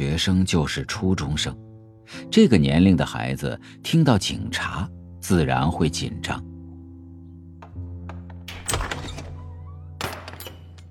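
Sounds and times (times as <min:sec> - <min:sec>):
speech: 0:00.0 - 0:06.5
soft clicks of a door being unlocked: 0:07.6 - 0:10.8.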